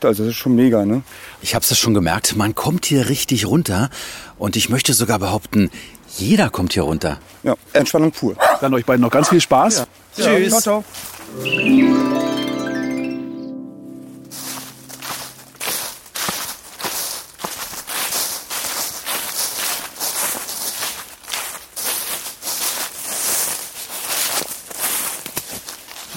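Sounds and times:
speech: 0:00.0 - 0:12.5
footsteps crunching through dry fallen leaves on a forest hiking trail: 0:10.8 - 0:11.4, 0:14.0 - 0:26.1
tonal chime: 0:11.2 - 0:15.7.

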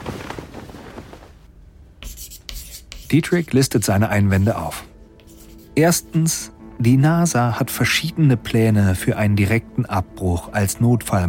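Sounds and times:
chalk writing on a board: 0:02.0 - 0:06.5
speech: 0:03.1 - 0:04.9, 0:05.8 - 0:11.2.

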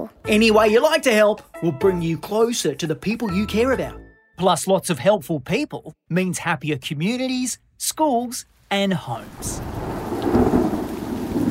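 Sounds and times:
speech: 0:00.3 - 0:10.4
steady hiss of rain: 0:07.1 - 0:11.4
low rumbling thunder: 0:09.3 - 0:11.4.

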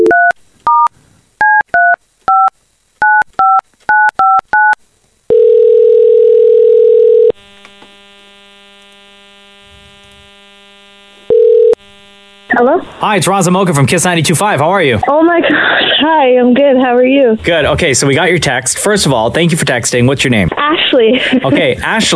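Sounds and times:
telephone number dialed on a touch-tone keypad: 0:00.0 - 0:07.3
quiet hum: 0:00.0 - 0:22.1
telephone ringing tone: 0:01.8 - 0:07.4, 0:09.6 - 0:12.6
speech: 0:12.6 - 0:22.1.

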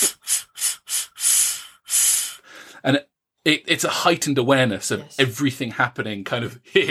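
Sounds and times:
quick breathy exhalations: 0:00.0 - 0:02.9
speech: 0:02.8 - 0:06.8.

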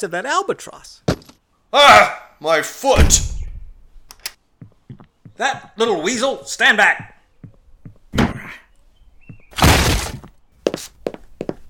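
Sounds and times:
speech: 0:00.0 - 0:03.4, 0:05.4 - 0:07.1
wooden door being battered and smashed down: 0:09.5 - 0:10.2.

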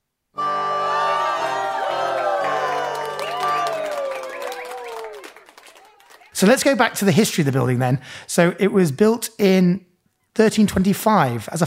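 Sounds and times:
crowd cheering and whooping: 0:00.5 - 0:06.3
shouting voices: 0:00.9 - 0:06.5
speech: 0:06.4 - 0:11.6.

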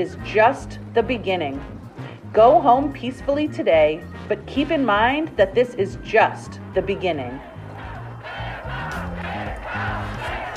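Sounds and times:
speech: 0:00.0 - 0:07.5
large crowd chanting in unison outdoors: 0:06.6 - 0:10.5.

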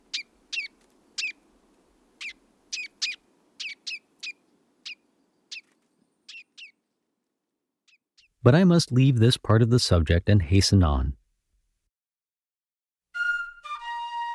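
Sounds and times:
ruby-crowned kinglet singing: 0:00.0 - 0:01.4, 0:02.1 - 0:07.0, 0:07.8 - 0:08.4
speech: 0:08.4 - 0:11.2.

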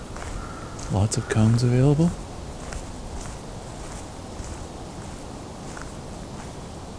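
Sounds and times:
ambient noise at a spruce campground: 0:00.0 - 0:06.9
footsteps crunching over ground at a spruce campground: 0:00.0 - 0:06.9
speech: 0:00.9 - 0:02.3.

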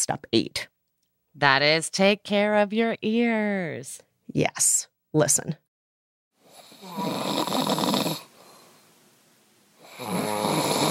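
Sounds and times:
speech: 0:00.0 - 0:00.7, 0:01.4 - 0:05.6
man snoring at night: 0:06.4 - 0:08.7, 0:09.8 - 0:10.9
breathy exhale: 0:08.2 - 0:08.9.

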